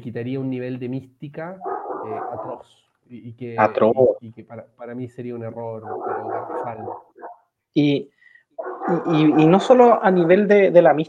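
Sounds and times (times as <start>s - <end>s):
speech: 0.0s - 8.2s, 8.9s - 11.0s
dog barking in the background: 1.6s - 2.6s, 5.8s - 7.5s, 8.6s - 10.4s.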